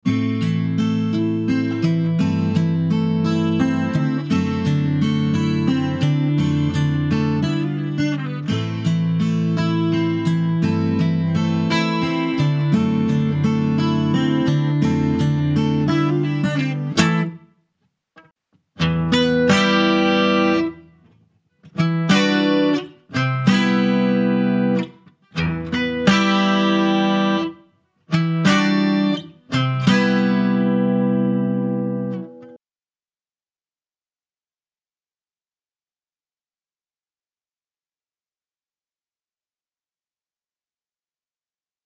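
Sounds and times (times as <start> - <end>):
new Martin D 28 acoustic guitar: 0.0 - 17.6, 18.2 - 32.6.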